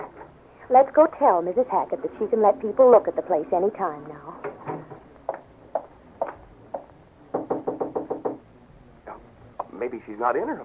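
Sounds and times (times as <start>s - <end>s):
speech: 0.7s - 4.4s, 10.1s - 10.6s
knuckles knocking on an apartment door: 4.5s - 8.4s.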